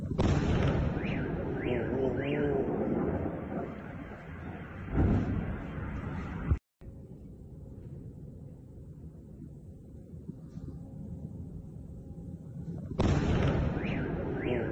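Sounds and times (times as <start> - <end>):
distant explosion booming and rumbling: 0.2 - 6.6, 13.0 - 14.6.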